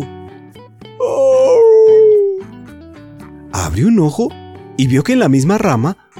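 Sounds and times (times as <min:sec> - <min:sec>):
speech: 0:01.0 - 0:01.2, 0:03.8 - 0:06.0
whimpering cry: 0:01.0 - 0:02.5.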